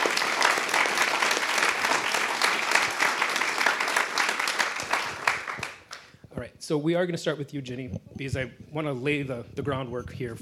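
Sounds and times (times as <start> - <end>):
audience applause for a panel of speakers at a discussion event: 0.0 - 6.1
speech: 6.7 - 10.4.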